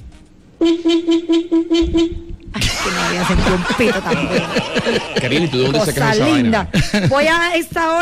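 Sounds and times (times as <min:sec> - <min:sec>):
car horn honking: 0:00.6 - 0:02.3
speech: 0:00.6 - 0:08.0
people laughing: 0:02.6 - 0:07.5.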